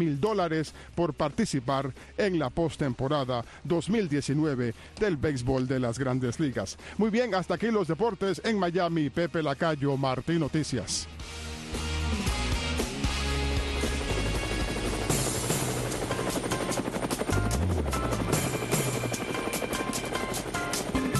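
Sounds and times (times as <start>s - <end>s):
speech: 0.0s - 11.8s
helicopter rotor chopping: 13.0s - 21.1s.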